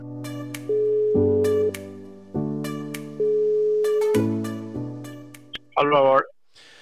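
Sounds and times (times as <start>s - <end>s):
outgoing phone call ringing tone with electronic melody: 0.7s - 1.8s, 3.2s - 4.4s
speech: 5.8s - 6.3s.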